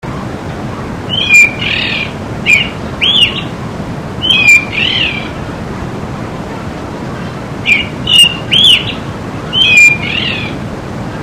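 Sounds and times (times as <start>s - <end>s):
steady background hiss: 0.0s - 11.2s
thrush singing short whistled phrases: 1.1s - 3.5s, 4.2s - 5.2s, 7.7s - 10.5s.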